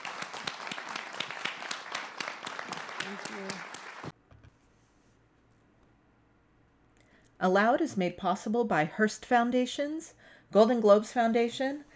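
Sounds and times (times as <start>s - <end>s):
audience applause at the close of an event: 0.0s - 4.2s
speech: 3.1s - 3.8s, 7.4s - 11.9s.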